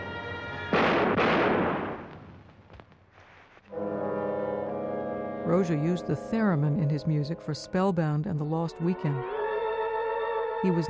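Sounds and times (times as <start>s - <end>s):
sustained brassy musical tones in a film score: 0.0s - 0.8s, 3.7s - 10.8s
loud booming gunshots with long decay in a film scene: 0.7s - 2.9s
speech: 5.5s - 9.4s, 10.6s - 10.8s.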